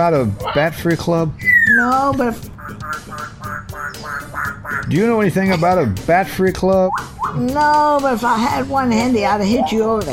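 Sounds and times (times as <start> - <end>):
speech: 0.0 - 10.1
parrot squawking: 0.4 - 0.8, 1.4 - 6.0, 6.8 - 7.4, 9.4 - 10.1.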